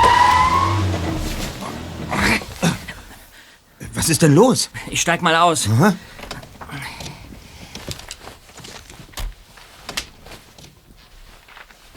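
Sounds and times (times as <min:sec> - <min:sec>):
high brake-like squeal: 0:00.0 - 0:03.2
car engine sputtering and dying: 0:00.0 - 0:03.3
sharp hissing clunking bursts: 0:00.0 - 0:03.3
speech: 0:04.0 - 0:06.9.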